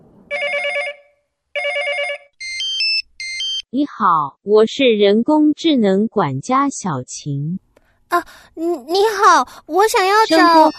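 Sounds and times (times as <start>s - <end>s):
warbling electronic phone ring during an outgoing call: 0.3s - 3.6s, 10.1s - 10.7s
speech: 3.7s - 10.7s
bright high beeping chime tones: 10.2s - 10.7s.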